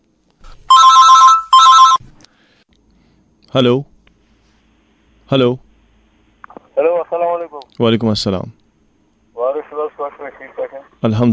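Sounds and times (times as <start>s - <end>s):
telephone ringing for an incoming caller: 0.7s - 2.0s
speech: 3.5s - 3.9s, 5.3s - 5.6s, 7.8s - 8.6s, 10.2s - 11.3s.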